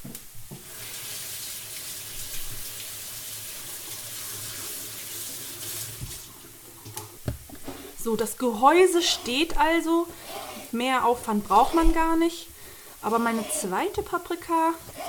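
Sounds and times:
tap water running into a sink while bell peppers are rinsed: 0.5s - 7.7s
speech: 8.0s - 14.9s.

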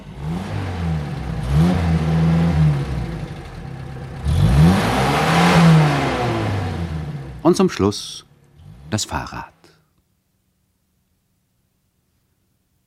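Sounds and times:
car engine rumbling past on a road: 0.0s - 7.4s
speech: 7.5s - 8.3s, 8.9s - 9.5s.

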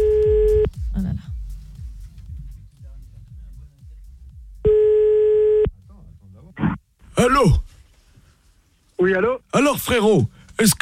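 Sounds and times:
low rhythmic background: 0.0s - 10.7s
telephone ringing tone: 4.7s - 5.7s
speech: 7.2s - 7.6s, 9.0s - 10.8s.

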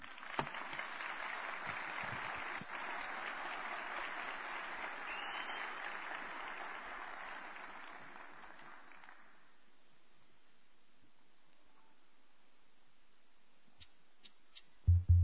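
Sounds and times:
audience applause at a cultural anniversary ceremony: 0.0s - 9.6s.

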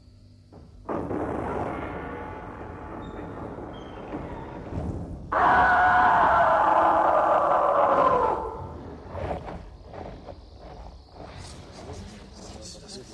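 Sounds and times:
steady rumbling noise: 0.0s - 13.1s
loud scream in a radio drama from a first bite: 5.3s - 8.9s.

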